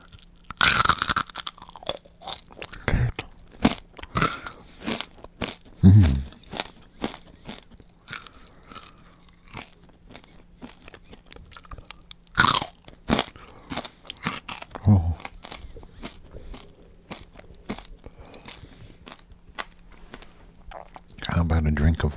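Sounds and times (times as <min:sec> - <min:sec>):
animal chewing corn: 0:00.0 - 0:22.0
speech: 0:05.8 - 0:06.3.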